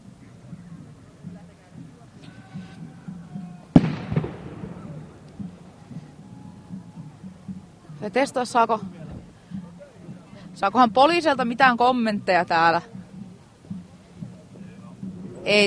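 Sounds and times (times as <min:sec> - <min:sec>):
people talking quietly: 0:00.0 - 0:15.6
fireworks going off with a sharp bang and crackling rumble: 0:03.7 - 0:04.9
speech: 0:08.0 - 0:09.0, 0:10.6 - 0:12.9, 0:15.4 - 0:15.6.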